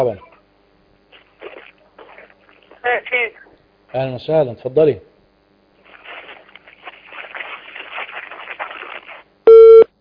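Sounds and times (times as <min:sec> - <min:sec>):
speech: 0:00.0 - 0:00.3, 0:02.8 - 0:05.1
faint crackly telephone line noise: 0:00.6 - 0:04.0, 0:05.3 - 0:09.5
telephone busy tone after a call is disconnected: 0:09.5 - 0:09.8.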